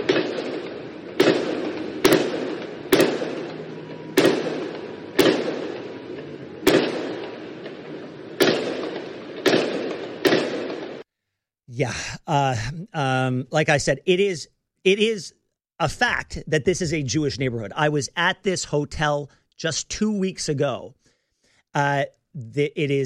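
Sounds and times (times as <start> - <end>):
gunshots from a shooter inside a hotel in a Jewish neighborhood: 0.0 - 11.0
speech: 11.8 - 21.0, 21.7 - 23.0.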